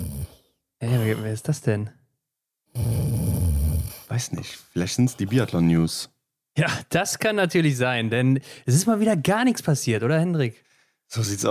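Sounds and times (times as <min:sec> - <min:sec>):
person snoring: 0:00.0 - 0:01.3, 0:02.7 - 0:04.2
speech: 0:01.1 - 0:02.0, 0:04.1 - 0:11.5.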